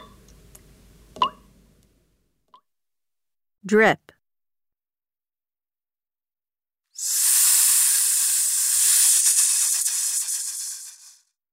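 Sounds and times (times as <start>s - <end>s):
speech: 3.6s - 4.2s
steady bright hiss: 7.0s - 11.2s.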